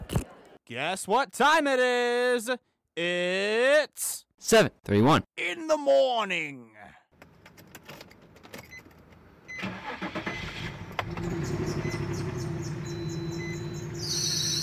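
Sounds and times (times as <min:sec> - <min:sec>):
speech: 0:00.7 - 0:07.0
car engine cranking, sputtering and idling: 0:09.0 - 0:14.1.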